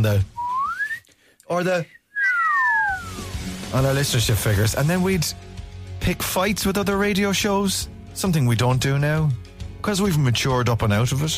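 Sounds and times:
speech: 0:00.0 - 0:00.3, 0:01.5 - 0:02.0, 0:03.7 - 0:05.4, 0:06.0 - 0:11.3
slide whistle: 0:00.4 - 0:01.0, 0:02.0 - 0:03.5.

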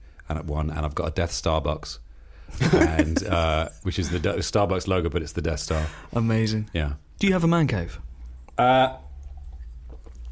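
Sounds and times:
steady low hum: 0:00.0 - 0:10.3
speech: 0:00.3 - 0:09.0
laughter: 0:02.6 - 0:04.5
person drinking from a glass: 0:08.4 - 0:10.3.

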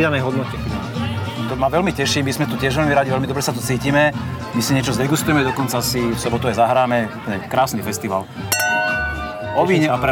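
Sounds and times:
speech: 0:00.0 - 0:08.6, 0:09.6 - 0:10.1
two wine glasses clinking in a toast at a wine festival: 0:08.5 - 0:10.1.

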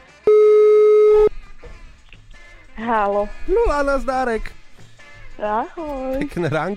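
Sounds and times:
telephone ringing tone, steady electronic beep: 0:00.3 - 0:01.3
speech: 0:02.9 - 0:04.6, 0:05.4 - 0:06.7.

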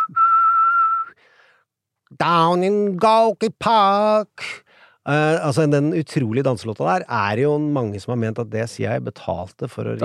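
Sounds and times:
person whistling a tune: 0:00.0 - 0:01.2
speech: 0:02.2 - 0:10.0.

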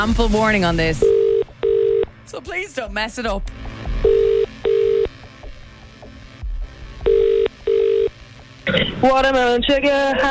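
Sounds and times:
speech: 0:00.0 - 0:01.2, 0:02.3 - 0:03.6, 0:09.0 - 0:10.3
buzzy telephone ringback tones: 0:01.0 - 0:02.1, 0:04.0 - 0:05.1, 0:07.1 - 0:08.1.

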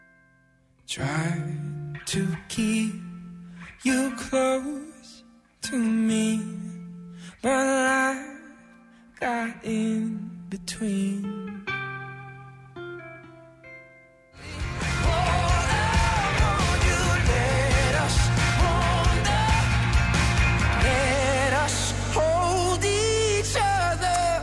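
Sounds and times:
speech: 0:00.9 - 0:03.1, 0:03.8 - 0:06.7, 0:07.4 - 0:08.3, 0:09.2 - 0:11.6
sung lead vocal: 0:00.9 - 0:12.6, 0:14.4 - 0:24.4
pop single on a morning radio show: 0:03.6 - 0:08.5, 0:09.2 - 0:11.5, 0:14.4 - 0:24.4.

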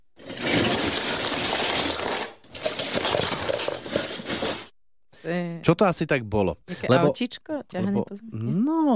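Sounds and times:
Lego bricks poured out of a storage box clattering: 0:00.2 - 0:04.7
speech: 0:05.3 - 0:08.9.

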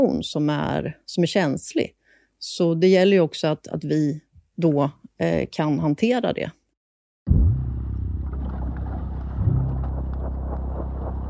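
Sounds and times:
speech: 0:00.0 - 0:06.6
car carrying a bomb driving from Västerås, engine rumble from inside: 0:07.3 - 0:11.2.

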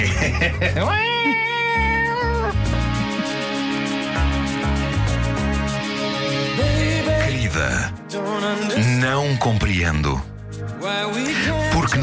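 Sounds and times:
music with regular beat and deep bass: 0:00.0 - 0:01.0, 0:01.8 - 0:12.0
laughter: 0:00.0 - 0:01.9
speech: 0:00.1 - 0:01.2, 0:07.5 - 0:12.0
cat meowing: 0:00.9 - 0:02.7.

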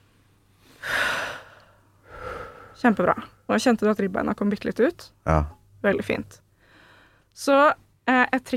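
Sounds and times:
deep inhale through the nose during a singing breath-support exercise: 0:00.6 - 0:02.8
speech: 0:02.8 - 0:06.4, 0:07.4 - 0:08.5.

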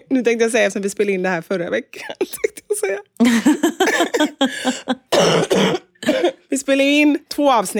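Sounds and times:
speech: 0:00.1 - 0:05.7, 0:06.6 - 0:07.7
ill person coughing: 0:03.8 - 0:06.5.

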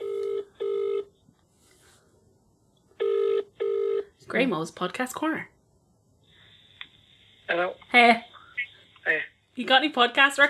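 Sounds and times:
telephone ringing tone in double-ring pattern: 0:00.0 - 0:01.1, 0:03.0 - 0:04.1
speech: 0:04.3 - 0:05.6, 0:07.5 - 0:08.3, 0:09.6 - 0:10.4.

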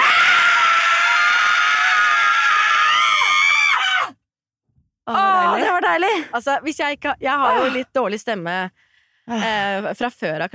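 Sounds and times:
two people screaming as loud as possible: 0:00.0 - 0:04.2
speech: 0:06.0 - 0:10.5.

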